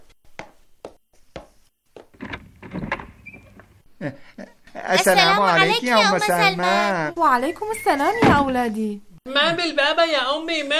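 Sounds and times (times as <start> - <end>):
door rattling and scraping as it swings open: 2.1 - 3.8
speech: 4.0 - 10.7.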